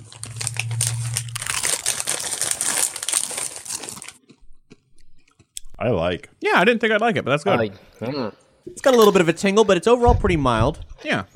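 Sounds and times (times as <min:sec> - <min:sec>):
crunching curry-flavored Doritos tortilla chips: 0:00.0 - 0:05.5
quiet chewing: 0:04.1 - 0:05.8
speech: 0:05.8 - 0:11.3.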